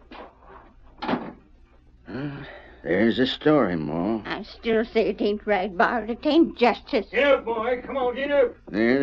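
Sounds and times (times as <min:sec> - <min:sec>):
door swinging and shutting with a solid thump: 0:01.0 - 0:01.5
speech: 0:02.8 - 0:09.0.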